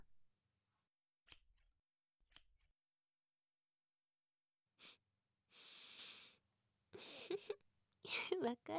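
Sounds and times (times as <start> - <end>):
scissors cutting through a knot: 1.3 - 2.7
speech: 8.5 - 8.7.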